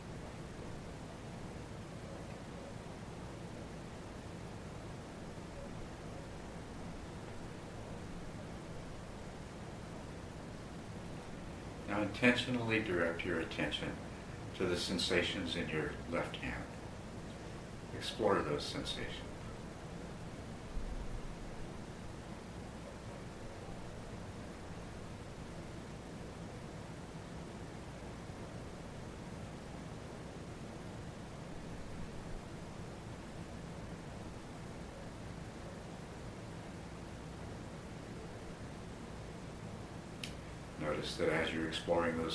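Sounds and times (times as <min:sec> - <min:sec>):
steady low air conditioning hum: 0:00.0 - 0:42.3
speech: 0:12.0 - 0:14.0, 0:14.6 - 0:16.8, 0:18.0 - 0:19.3, 0:41.2 - 0:42.3
faint click: 0:40.2 - 0:40.4.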